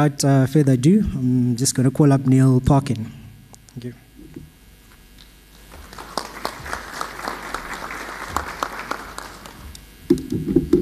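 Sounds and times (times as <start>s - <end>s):
speech: 0.0s - 3.2s, 3.8s - 4.0s, 10.3s - 10.7s
audience applauding: 5.5s - 9.8s.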